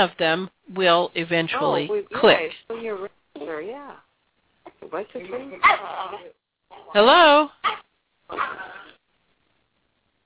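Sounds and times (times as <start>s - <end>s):
speech: 0.0s - 4.1s, 4.8s - 8.8s
dog barking: 5.6s - 6.3s, 7.6s - 8.8s.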